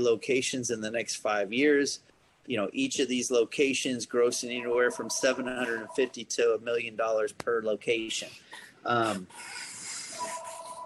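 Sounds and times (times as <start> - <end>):
speech: 0.0 - 10.3
hiss: 0.0 - 10.8
phone ringing with electronic tones: 4.4 - 6.2, 10.2 - 10.8.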